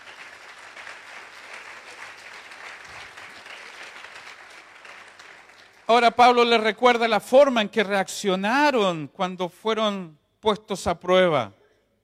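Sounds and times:
congregation applauding: 0.0 - 6.7
speech: 5.9 - 11.6.

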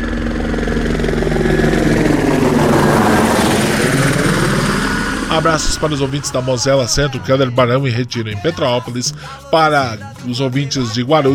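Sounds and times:
helicopter passing close overhead: 0.0 - 7.8
speech: 5.4 - 11.3.

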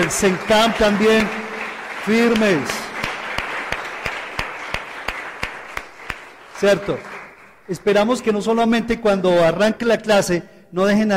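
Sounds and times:
speech: 0.0 - 1.4, 2.0 - 2.8, 6.6 - 7.1, 7.7 - 11.1
audience clapping for academy trainees: 0.0 - 8.3.

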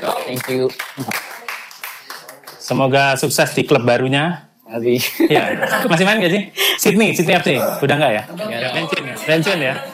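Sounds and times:
speech: 0.0 - 1.3, 2.7 - 9.9
applause from a small group: 0.1 - 2.7.

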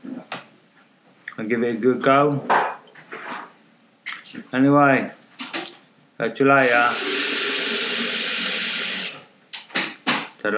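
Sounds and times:
speech: 1.4 - 2.7, 4.5 - 5.2, 6.2 - 7.2
kettle boiling and steaming with hiss and bubbling: 6.6 - 9.2.

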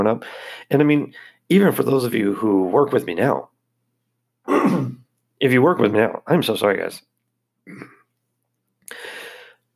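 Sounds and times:
speech: 0.0 - 3.5, 4.5 - 7.1, 7.7 - 8.0
person coughing in the morning: 4.5 - 5.1, 7.7 - 8.0.

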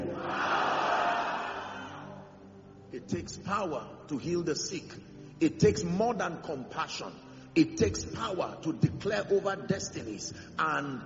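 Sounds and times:
large church audience shouting together: 0.0 - 2.2
speech: 3.1 - 11.0.

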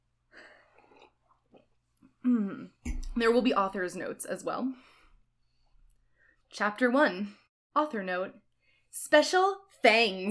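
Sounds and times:
noisy slurping sip of an alcoholic drink: 0.6 - 1.7
speech: 2.2 - 4.9, 6.5 - 10.2.

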